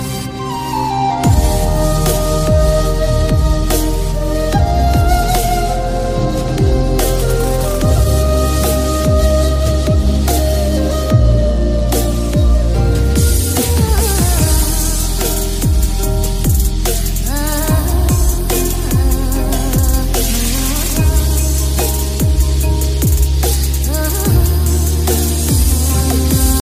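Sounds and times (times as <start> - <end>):
heart breaking Turkish music ringtone: 0.0 - 26.5.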